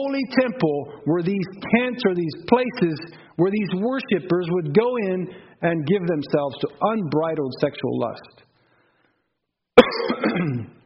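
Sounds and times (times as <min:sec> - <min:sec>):
speech: 0:00.0 - 0:08.4, 0:09.8 - 0:10.8
rumbling throat clearing set off by a tickle in the throat: 0:09.8 - 0:10.8
sharp cough from a throat tickle: 0:09.8 - 0:10.8.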